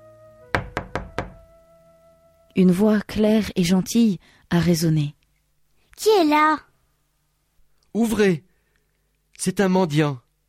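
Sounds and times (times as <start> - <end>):
soft steady hum: 0.0 - 10.4
old man knocking on a low crooked wooden cabin door: 0.5 - 1.4
speech: 2.6 - 5.2, 6.0 - 6.7, 7.9 - 8.5, 9.4 - 10.2.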